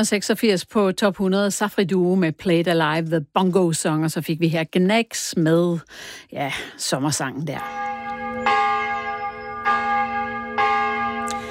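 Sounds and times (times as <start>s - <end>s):
speech: 0.0s - 8.0s
church bells ringing: 7.5s - 11.4s.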